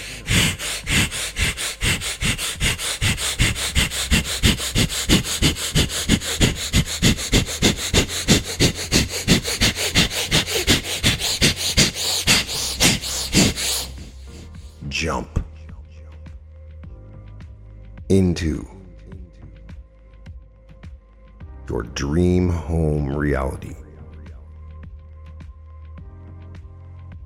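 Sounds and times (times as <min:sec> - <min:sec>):
forceful breath-of-fire breathing through the nose during a guided meditation: 0:00.0 - 0:14.8
speech: 0:18.4 - 0:18.8, 0:21.7 - 0:23.8.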